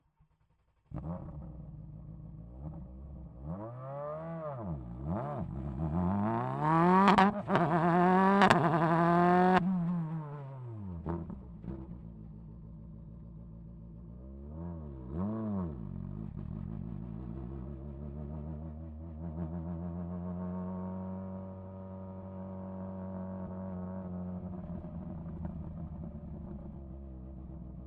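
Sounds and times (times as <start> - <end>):
Skoda Fabia R5 WRC2 rally car exhaust, onboard, driving, stopping and reversing: 0.8 - 27.8.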